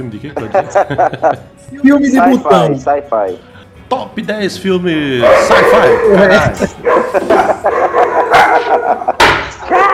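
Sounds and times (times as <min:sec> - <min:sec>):
speech: 0:00.0 - 0:09.9
laughter: 0:00.3 - 0:01.6, 0:05.7 - 0:09.7
several dogs barking and yipping: 0:05.2 - 0:09.9.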